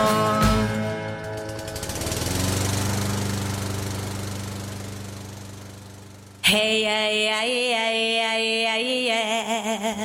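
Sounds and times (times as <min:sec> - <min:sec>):
lawnmower engine running: 0:00.0 - 0:07.4
speech: 0:06.5 - 0:10.0.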